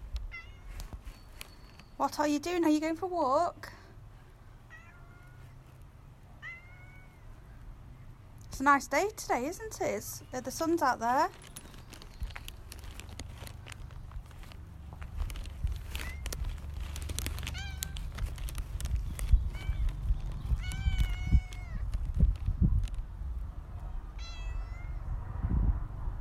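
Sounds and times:
clicks and rustles: 0.0s - 2.0s, 9.6s - 23.1s
female cat meowing: 0.3s - 0.8s, 4.7s - 5.6s, 6.4s - 7.2s, 20.5s - 21.9s, 24.2s - 25.1s
steady low outdoor rumble on a sunny day: 1.8s - 26.1s
speech: 2.0s - 3.8s, 8.6s - 11.5s.

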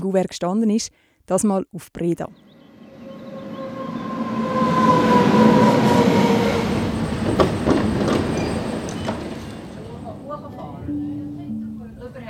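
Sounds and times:
speech: 0.0s - 2.4s
mountain railway train rumbling along the rails through spiral tunnels: 2.3s - 12.2s
squealing train wheel tones: 2.6s - 10.2s
sharp clanks of a mountain railway train: 7.2s - 9.9s.

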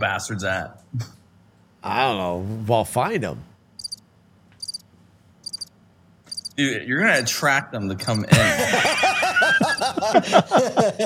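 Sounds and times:
speech: 0.0s - 1.2s, 1.8s - 3.5s, 6.6s - 11.0s
low hum: 0.0s - 11.0s
cricket chirping: 3.8s - 4.0s, 4.6s - 4.8s, 5.4s - 5.7s, 6.3s - 7.3s, 9.6s - 10.0s
laughter: 8.1s - 11.0s.

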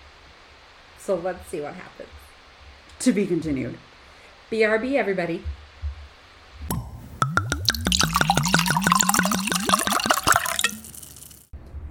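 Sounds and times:
speech: 1.0s - 2.2s, 3.0s - 3.9s, 4.5s - 5.6s
wine pouring from a bottle into a glass: 6.7s - 11.5s.

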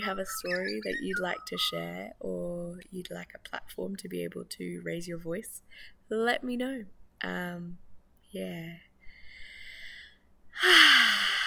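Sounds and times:
speech: 0.0s - 8.9s, 10.6s - 11.2s
deep breaths: 9.0s - 11.4s.

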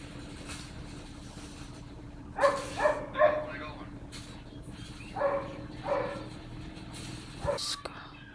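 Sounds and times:
low steady hum: 0.0s - 8.3s
dog barking: 2.4s - 3.6s, 5.1s - 6.4s, 7.4s - 7.7s.

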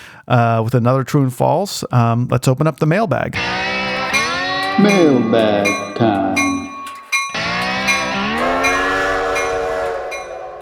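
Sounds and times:
speech: 0.3s - 3.7s, 4.8s - 6.6s
train horn blaring: 3.4s - 10.6s.

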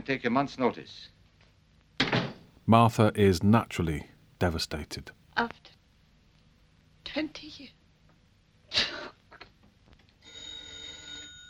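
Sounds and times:
speech: 0.1s - 1.2s, 2.7s - 5.7s, 7.1s - 7.8s
telephone ringing in a 1937 film: 10.2s - 11.4s.

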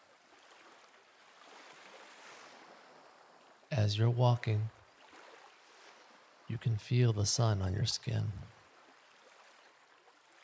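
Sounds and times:
ocean waves: 0.0s - 10.4s
speech: 3.8s - 4.8s, 6.5s - 8.5s.

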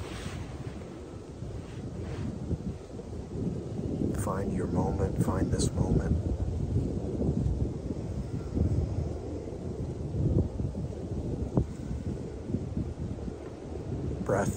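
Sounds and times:
faint rustling: 0.0s - 2.9s
wind blowing through trees: 0.0s - 14.5s
speech: 4.3s - 6.9s.

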